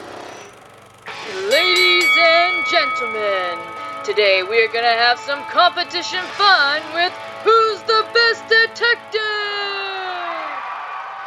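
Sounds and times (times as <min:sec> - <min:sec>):
high yell sliding downward: 0:01.0 - 0:11.2
speech: 0:02.8 - 0:09.6
crowd cheering and whooping: 0:09.0 - 0:11.2.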